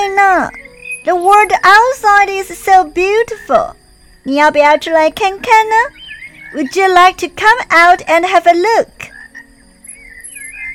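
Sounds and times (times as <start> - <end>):
frogs croaking and trilling in a chorus: 0.0 - 10.7
speech: 0.4 - 9.0.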